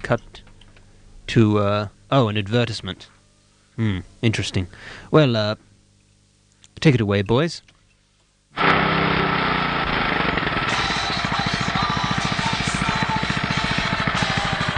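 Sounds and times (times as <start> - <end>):
speech: 0.0 - 0.4, 1.3 - 3.2, 3.8 - 5.7, 6.8 - 7.7
lawnmower engine starting and running: 8.6 - 14.7.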